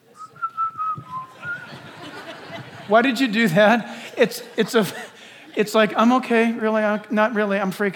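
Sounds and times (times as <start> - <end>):
person whistling a tune to calm their nerves: 0.2 - 1.8
laughter: 1.0 - 7.9
speech: 2.9 - 7.9.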